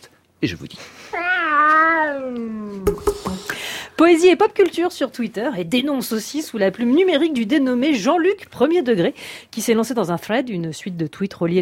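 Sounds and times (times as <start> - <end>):
speech: 0.4 - 3.1, 4.0 - 11.5
cat meowing: 1.2 - 2.8.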